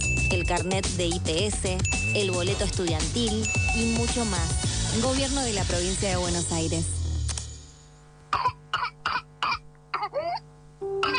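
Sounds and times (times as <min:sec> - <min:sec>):
speech: 0:00.3 - 0:07.0
harsh coughs in an intense whooping cough fit: 0:08.3 - 0:11.1.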